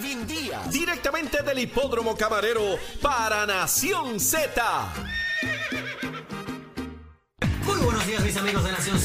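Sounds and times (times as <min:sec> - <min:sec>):
speech: 0:00.2 - 0:05.9, 0:08.1 - 0:09.0
horse neighing: 0:05.0 - 0:06.5.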